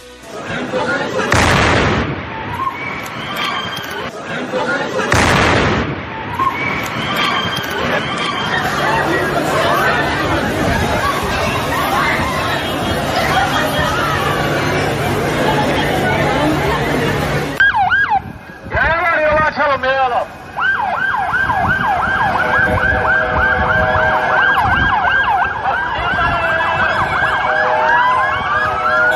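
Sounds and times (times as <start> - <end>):
crowd chatter on a busy street: 0.0 - 29.1
bomb explosion on a bench outside a shop in an Istanbul street: 1.3 - 2.8, 5.1 - 7.1
emergency vehicle sirens wailing after explosion: 1.9 - 4.2, 6.0 - 29.1
people shouting after bomb explosion: 6.1 - 14.9, 25.6 - 28.3.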